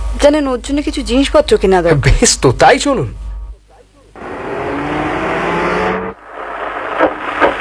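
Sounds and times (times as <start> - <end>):
speech: 0.2 - 3.2
bus engine and road roar: 4.2 - 7.5.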